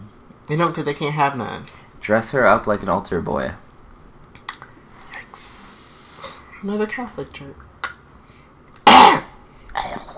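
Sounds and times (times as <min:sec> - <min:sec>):
speech: 0:00.5 - 0:03.6, 0:06.6 - 0:07.7
sharp loud cough: 0:08.8 - 0:09.4
faint rough throat sound: 0:08.9 - 0:10.1.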